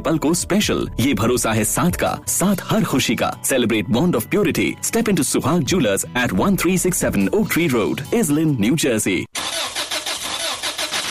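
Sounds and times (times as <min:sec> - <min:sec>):
speech: 0:00.0 - 0:09.4
car engine cranking without starting: 0:09.4 - 0:11.0.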